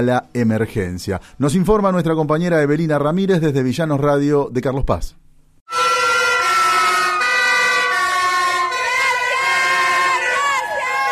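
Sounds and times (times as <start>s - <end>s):
speech: 0.0s - 5.2s
fire truck sirens: 5.7s - 11.0s
roadside crowd clapping and cheering: 6.2s - 11.0s.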